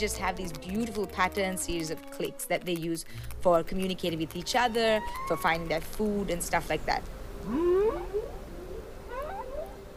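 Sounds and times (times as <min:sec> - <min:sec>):
speech: 0:00.0 - 0:08.3
low steady hum: 0:00.0 - 0:09.9
humpback whale song moans: 0:07.4 - 0:09.9.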